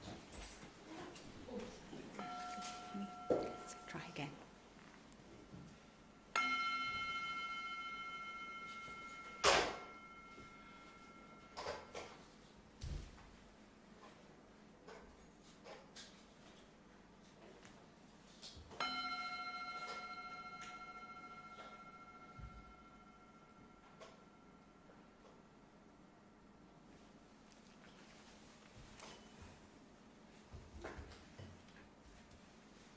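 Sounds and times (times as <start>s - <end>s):
faint room noise: 0.0s - 32.9s
meditation bell struck for a meditative pause: 2.2s - 4.4s, 6.3s - 12.2s, 18.7s - 26.0s.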